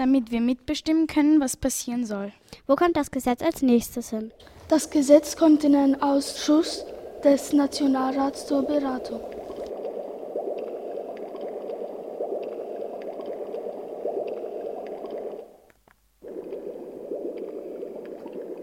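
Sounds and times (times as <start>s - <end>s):
speech: 0.0s - 9.4s
underwater bubbling and gurgling while diving: 4.3s - 18.6s.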